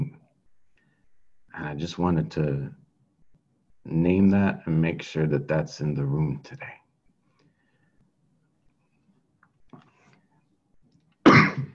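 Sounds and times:
speech: 1.7 - 2.8, 3.9 - 6.8
harsh wheezy chesty asthma cough: 11.3 - 11.7.

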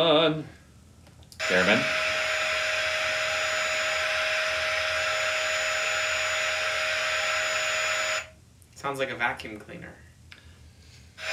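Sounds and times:
speech: 0.0 - 0.6, 1.4 - 2.1, 8.8 - 10.1
vacuum cleaner running: 1.4 - 8.3.

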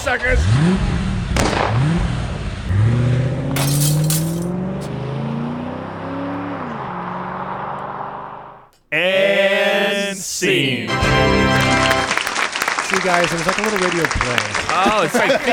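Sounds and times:
car engine revving, shifting gears and driving off: 0.0 - 8.8
speech: 0.1 - 1.0, 13.0 - 15.5
crash-like burst: 1.3 - 2.3
laughter: 9.1 - 15.5.

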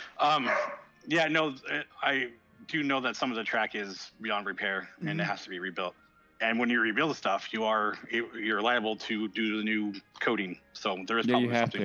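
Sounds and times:
speech: 0.2 - 11.8
dogs barking: 0.4 - 0.9.

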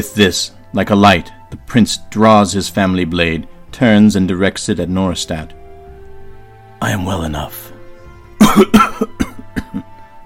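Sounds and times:
speech: 0.0 - 5.6, 6.8 - 7.7, 8.5 - 9.2
sick man coughing up blood: 8.4 - 10.0.

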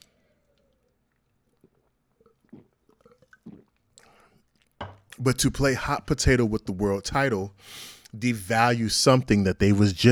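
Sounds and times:
person sipping a drink: 0.0 - 5.2
wet slurps and mouth sounds: 0.6 - 4.7
loud gulp: 2.4 - 4.2
speech: 5.2 - 10.1.

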